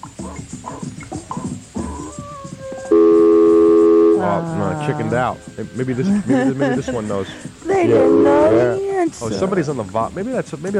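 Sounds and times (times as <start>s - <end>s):
clattery noise: 0.0s - 10.7s
brief higher beeps: 2.9s - 4.5s
telephone ringing on studio phone line: 2.9s - 5.3s, 7.7s - 8.8s
laughter: 4.2s - 9.7s
speech: 4.4s - 10.7s.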